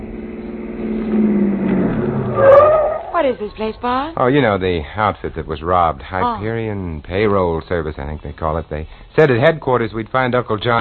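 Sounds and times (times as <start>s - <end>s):
car engine revving: 0.0s - 3.7s
speech: 3.2s - 10.7s.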